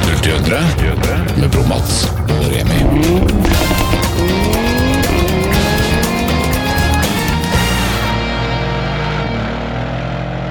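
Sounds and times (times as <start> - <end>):
speech: 0.2 - 3.7
V8 engine roaring while accelerating along a motorway: 2.3 - 10.4.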